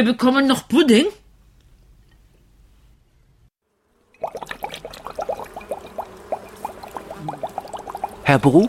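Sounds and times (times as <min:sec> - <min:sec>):
speech: 0:00.0 - 0:01.2, 0:08.3 - 0:08.6
greenish liquid poured into a sprayer: 0:04.2 - 0:08.3.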